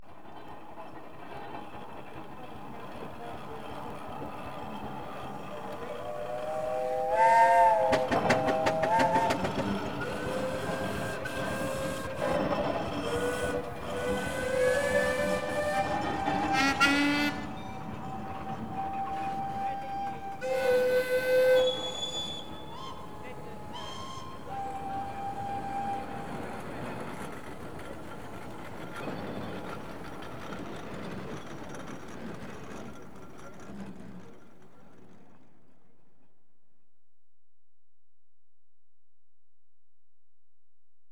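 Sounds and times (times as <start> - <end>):
traction engines blowing horns: 3.1 - 30.4.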